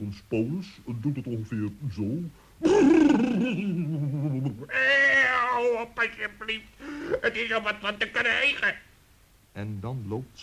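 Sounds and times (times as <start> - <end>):
speech: 0.0 - 8.9, 9.6 - 10.4
person imitating a horse's whinny: 4.6 - 5.7.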